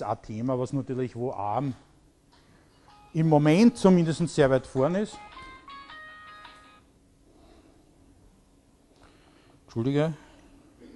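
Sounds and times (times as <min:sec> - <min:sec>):
speech: 0:00.0 - 0:01.9, 0:03.1 - 0:05.5, 0:09.7 - 0:10.2
mobile phone ringing in the audience of a talk: 0:02.7 - 0:03.8, 0:05.1 - 0:06.9.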